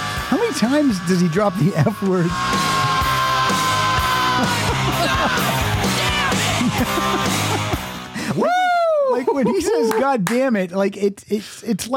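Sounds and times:
man's harsh sustained scream in a played recording: 0:00.0 - 0:07.5, 0:08.3 - 0:09.2
loud dense music in a played recording: 0:00.0 - 0:08.2
speech: 0:00.3 - 0:02.7, 0:04.4 - 0:06.0, 0:06.7 - 0:07.7, 0:08.3 - 0:11.9
laughter: 0:04.1 - 0:10.2.

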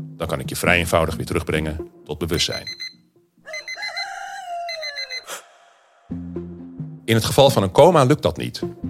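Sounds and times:
speech: 0:00.2 - 0:02.8, 0:07.1 - 0:08.8
alarm clock rooster-like crowing call: 0:03.5 - 0:05.4.

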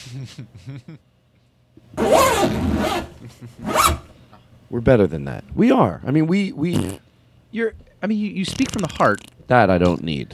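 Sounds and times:
speech: 0:00.0 - 0:01.2, 0:01.8 - 0:10.3
zipper being pulled sharply: 0:02.0 - 0:04.1.

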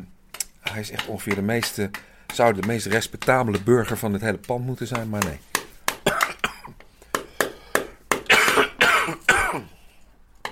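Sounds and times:
speech: 0:00.7 - 0:05.5
person coughing: 0:06.0 - 0:06.8, 0:08.2 - 0:09.8.

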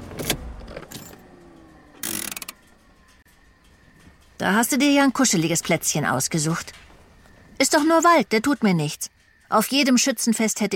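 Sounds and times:
car engine being switched off: 0:00.0 - 0:04.4
low quiet car cabin hum: 0:00.0 - 0:09.4
sharp clicks: 0:00.2 - 0:04.3
speech: 0:04.4 - 0:06.9, 0:07.6 - 0:10.7.

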